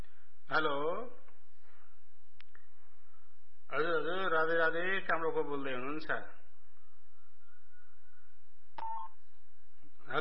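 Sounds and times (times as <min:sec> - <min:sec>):
faint hiss: 0:00.0 - 0:10.2
speech: 0:00.5 - 0:01.2, 0:03.7 - 0:06.4
telephone keypad button beep during a phone call on hold: 0:08.8 - 0:09.1.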